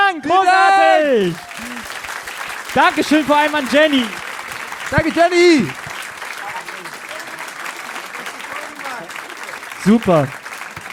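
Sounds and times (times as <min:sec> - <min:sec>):
audience applause: 0:00.9 - 0:10.9
faint voices in a crowd: 0:01.2 - 0:10.9
speech: 0:02.8 - 0:04.2, 0:04.9 - 0:05.8, 0:09.8 - 0:10.4.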